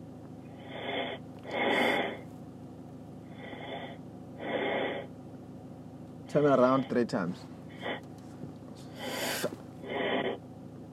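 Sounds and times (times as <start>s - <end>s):
heavy breathing in and out during a prayer session: 0.5s - 2.3s, 3.2s - 5.2s, 6.6s - 8.1s, 8.8s - 10.4s
speech: 6.3s - 7.6s.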